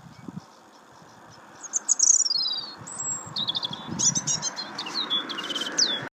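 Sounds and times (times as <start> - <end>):
soft steady background hiss: 0.0 - 3.4
bird song of thin high whistles and quick chirping notes in Ireland: 0.0 - 6.1.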